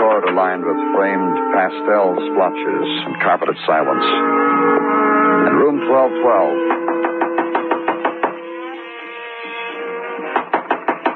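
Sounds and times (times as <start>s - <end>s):
jazz from a radio behind the door: 0.0s - 6.7s
speech: 0.3s - 6.7s
knocking on a hotel room door: 6.6s - 8.4s, 10.3s - 11.1s.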